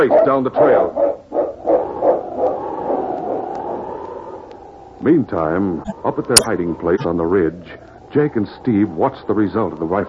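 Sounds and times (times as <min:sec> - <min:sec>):
speech: 0:00.0 - 0:01.0, 0:05.0 - 0:10.0
massive dog barking at a snowy ravine: 0:00.0 - 0:03.0.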